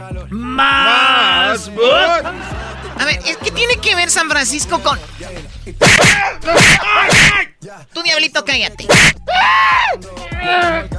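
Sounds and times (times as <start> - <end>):
speech: 0.3 - 0.9, 1.5 - 10.9
cartoonish little devil character screaming: 0.4 - 2.2, 5.8 - 7.5, 8.9 - 10.9
laughter: 0.7 - 4.8.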